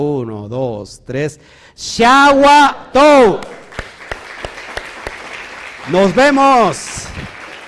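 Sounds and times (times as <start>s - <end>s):
speech: 0.0s - 3.6s, 5.9s - 7.4s
sharper evenly spaced claps: 3.3s - 7.6s
crowd applauding: 3.4s - 7.6s.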